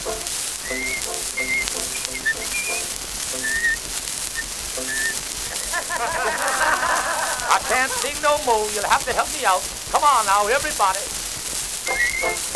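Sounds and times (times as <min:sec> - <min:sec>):
faint musical accompaniment: 0:00.0 - 0:12.5
soft hissy background: 0:00.0 - 0:12.5
person whistling a lively tune: 0:00.1 - 0:05.7, 0:11.8 - 0:12.5
laughter: 0:05.4 - 0:09.6
speech: 0:07.8 - 0:11.1.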